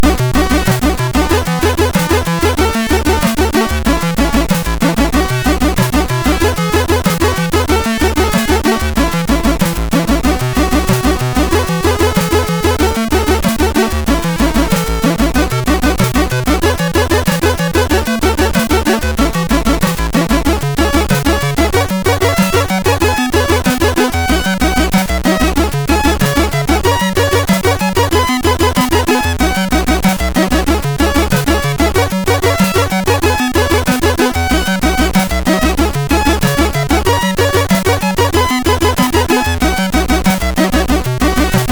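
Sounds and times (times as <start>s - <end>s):
MOS6581R3 chip music: 0.0s - 41.6s.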